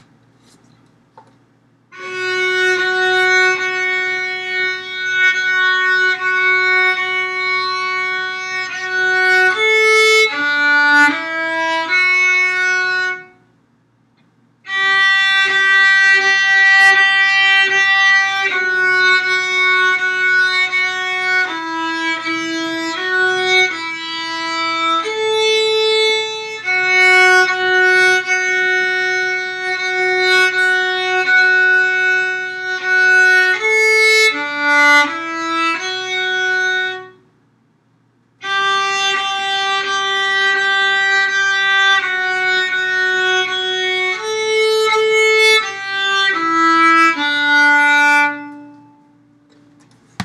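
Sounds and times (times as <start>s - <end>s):
slow melody practice: 0.0s - 50.2s.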